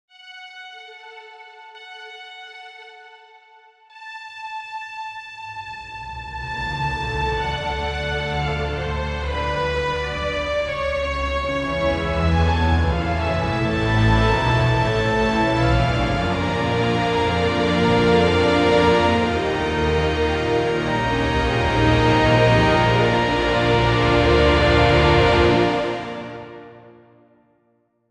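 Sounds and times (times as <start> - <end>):
epic orchestral score: 5.5 - 27.0.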